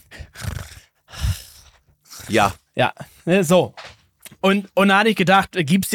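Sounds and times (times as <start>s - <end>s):
voice imitating loud rasping breathing of a trucker dad: 0.0s - 3.3s
speech: 2.3s - 3.8s, 4.4s - 5.9s.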